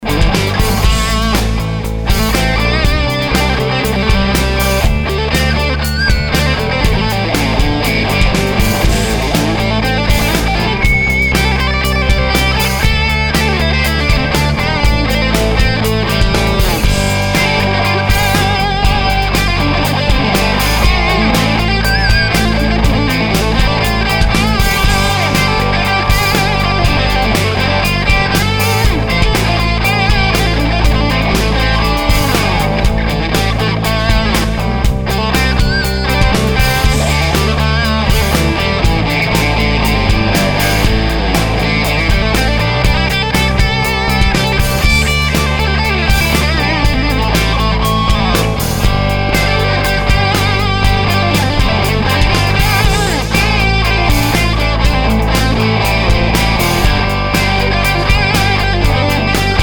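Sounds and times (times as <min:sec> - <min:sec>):
maple thinline Telecaster electric guitar: 0:00.0 - 0:59.6.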